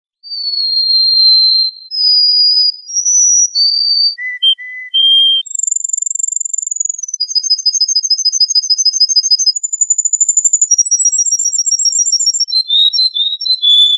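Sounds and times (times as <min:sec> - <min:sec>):
canary song with whistled notes and high pulsed trill: 0:00.2 - 0:13.9.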